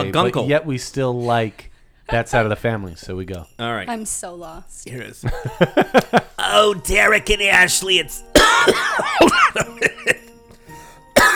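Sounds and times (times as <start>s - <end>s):
laughter: 0.0s - 2.3s, 4.9s - 10.3s
speech: 0.0s - 10.3s
person coughing from food stuck in the throat: 8.4s - 10.3s, 11.2s - 11.3s.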